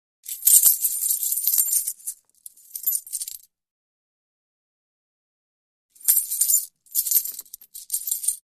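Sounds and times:
coins jingling: 0:00.3 - 0:03.4, 0:06.0 - 0:08.4.

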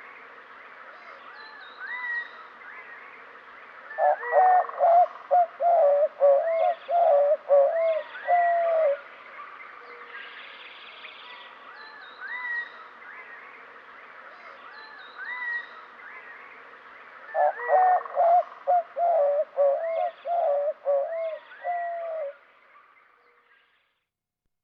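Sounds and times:
white-winged dove hooting coos in western North America: 0:04.0 - 0:09.1, 0:17.4 - 0:22.4.

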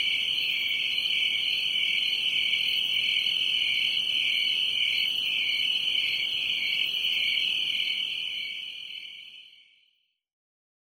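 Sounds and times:
crickets trilling: 0:00.0 - 0:08.7.

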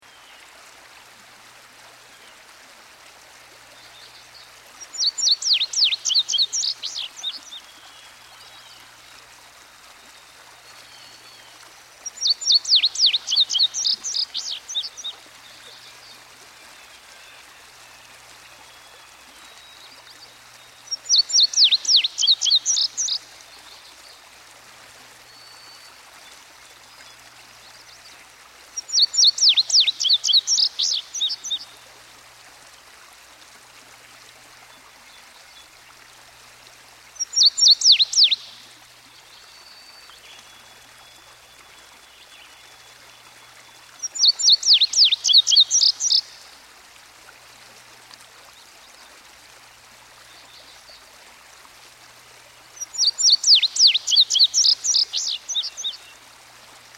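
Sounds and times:
stream flowing: 0:00.0 - 0:56.9
Indigo Bunting singing: 0:03.7 - 0:09.1, 0:10.0 - 0:24.2, 0:28.8 - 0:31.8, 0:37.2 - 0:46.5, 0:52.8 - 0:56.2
songbirds singing by a stream: 0:03.7 - 0:09.2, 0:10.0 - 0:24.3, 0:25.2 - 0:31.9, 0:37.2 - 0:46.6, 0:52.7 - 0:56.3.

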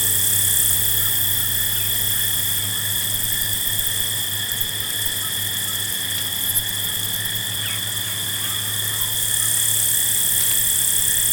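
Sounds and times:
field crickets chirping at night: 0:00.0 - 0:11.3.

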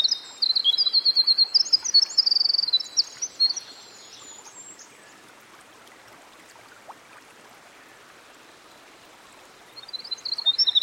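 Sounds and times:
winter wren singing by a stream: 0:00.0 - 0:05.0, 0:09.6 - 0:10.8
soft steady background noise by a stream: 0:00.0 - 0:10.8.

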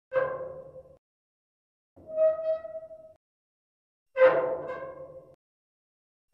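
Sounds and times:
thick resonant metal ladder squeaks: 0:00.1 - 0:01.0, 0:02.0 - 0:03.2, 0:04.2 - 0:05.3.

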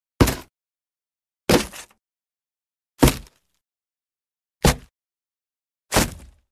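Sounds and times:
soft sandy bullet thud into wood: 0:03.0 - 0:03.4, 0:04.6 - 0:04.9, 0:05.9 - 0:06.4.

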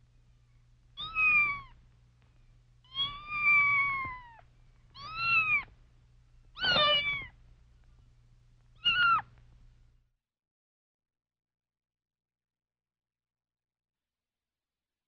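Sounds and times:
steady low hum: 0:00.0 - 0:10.1
kitten meowing plaintively: 0:01.0 - 0:01.8, 0:02.8 - 0:05.7, 0:06.5 - 0:07.4, 0:08.8 - 0:09.3.

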